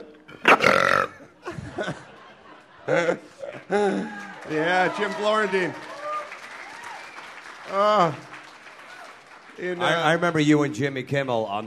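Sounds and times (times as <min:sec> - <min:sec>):
loud belch and gurgling burps: 0:00.3 - 0:01.4
laughter: 0:01.4 - 0:05.6
speech: 0:01.8 - 0:02.1, 0:02.9 - 0:05.9, 0:07.7 - 0:08.3, 0:09.6 - 0:11.6.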